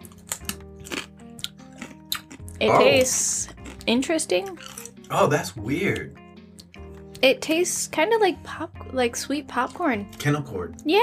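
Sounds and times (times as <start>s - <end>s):
crunchy bites into a lemon-lime tortilla chip: 0.0s - 2.6s, 4.5s - 5.0s
chewing crackle: 0.0s - 5.1s
speech: 2.6s - 6.2s, 7.2s - 11.0s.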